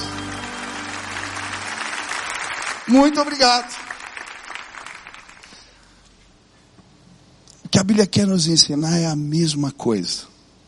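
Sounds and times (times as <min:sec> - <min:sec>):
audience applause: 0:00.0 - 0:05.7
speech: 0:02.9 - 0:03.9, 0:07.8 - 0:10.3.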